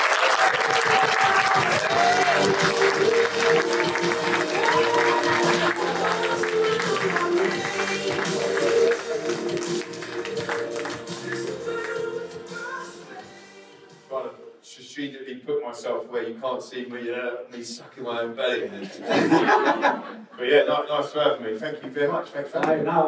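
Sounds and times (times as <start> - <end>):
audience applause for a guest at a live talk event: 0.0 - 12.1
speech: 16.6 - 23.0
laughter: 18.6 - 20.6.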